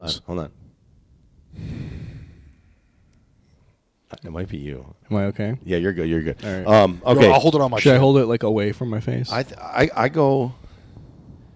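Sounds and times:
speech: 0.0s - 0.6s, 4.2s - 10.6s
long breath blown into a microphone: 1.5s - 3.8s, 10.5s - 11.5s.

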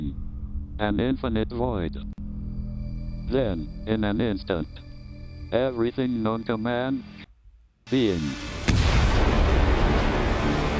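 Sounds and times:
speech: 0.8s - 2.2s, 3.3s - 4.9s, 5.5s - 7.2s, 7.9s - 8.5s
massive explosion boom with deep sustained roar: 8.2s - 10.7s.

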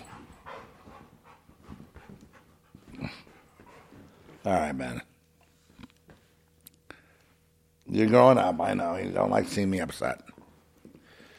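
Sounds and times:
male dog panting: 0.0s - 4.4s
speech: 4.4s - 5.1s, 8.0s - 10.3s.

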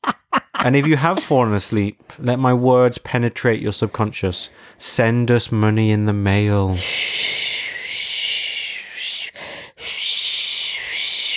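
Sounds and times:
laughter: 0.0s - 1.4s
speech: 0.6s - 7.5s
voice imitating a white noise machine with a breathy hiss: 6.7s - 11.3s.

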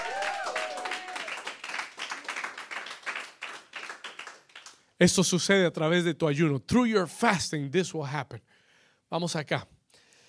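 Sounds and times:
person whooping: 0.0s - 1.5s
crowd applauding loudly: 0.0s - 4.8s
speech: 5.0s - 8.5s, 9.1s - 9.8s.

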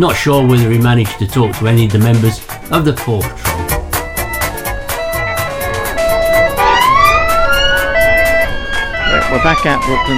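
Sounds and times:
speech: 0.0s - 3.7s, 9.3s - 10.1s
busy rumbling background: 0.0s - 10.1s
several emergency vehicle sirens wailing: 2.7s - 10.1s.

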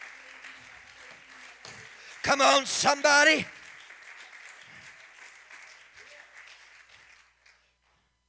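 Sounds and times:
crowd clapping: 0.0s - 8.0s
man calling out loudly: 2.2s - 3.5s
speech: 2.2s - 3.6s.

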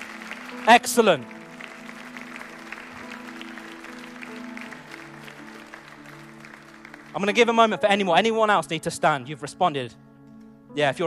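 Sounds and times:
large audience applauding: 0.0s - 7.8s
speech: 0.7s - 1.4s, 7.2s - 10.0s, 10.7s - 11.0s.

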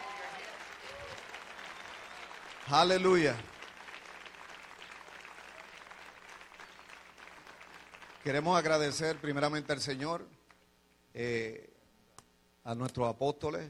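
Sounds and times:
large crowd applauding: 0.0s - 10.0s
speech: 2.7s - 3.5s, 8.2s - 10.4s, 11.1s - 11.7s, 12.6s - 13.6s.

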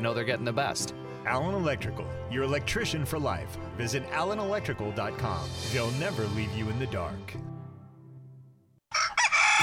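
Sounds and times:
speech: 0.0s - 7.5s
rooster crowing: 8.9s - 9.6s.

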